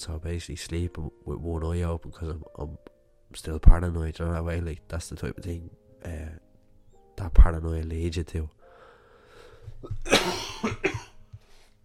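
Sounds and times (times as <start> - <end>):
speech: 0.0 - 6.4, 7.2 - 8.6, 9.8 - 11.0
person breathing: 8.6 - 9.8, 11.3 - 11.8
person coughing: 9.8 - 11.2.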